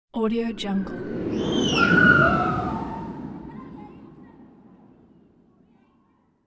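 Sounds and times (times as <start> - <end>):
passing people screaming at a funfair: 0.9 - 3.8.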